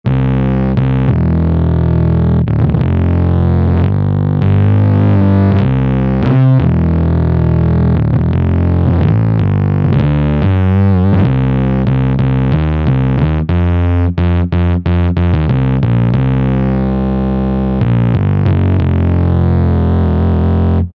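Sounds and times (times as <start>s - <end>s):
distorted synth bass: 0.0s - 20.9s.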